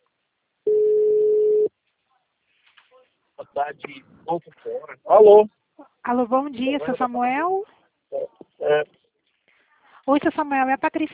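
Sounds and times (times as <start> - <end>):
ringing tone on an outgoing telephone call: 0.7 - 1.7
speech: 3.6 - 9.0, 10.1 - 11.1.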